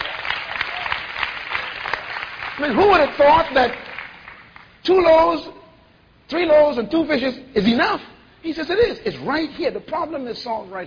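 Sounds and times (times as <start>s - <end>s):
audience applause: 0.0s - 4.7s
speech: 2.6s - 3.8s, 4.8s - 5.6s, 6.3s - 10.8s.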